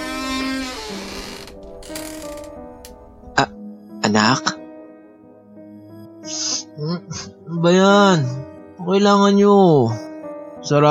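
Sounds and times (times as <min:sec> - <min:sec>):
bedroom door hinge and latch creaking open: 0:00.0 - 0:03.0
speech: 0:04.1 - 0:04.6, 0:06.9 - 0:10.0, 0:10.6 - 0:10.8.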